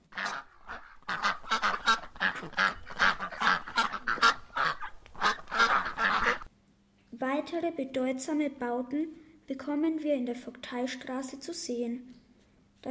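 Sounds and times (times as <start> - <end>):
ducks quacking: 0.0 - 6.5
flock of geese honking: 0.0 - 6.5
speech: 7.8 - 12.2.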